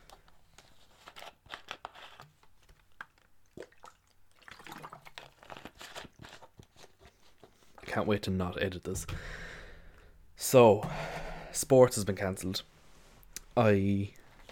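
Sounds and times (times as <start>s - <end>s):
sipping and swallowing water: 3.5s - 6.4s
speech: 7.9s - 9.5s, 10.5s - 12.7s, 13.6s - 14.2s.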